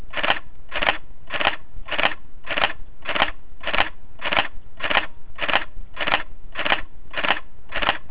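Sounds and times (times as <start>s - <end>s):
Sony Alpha DSLR-A330 camera in live view: 0.0s - 8.0s.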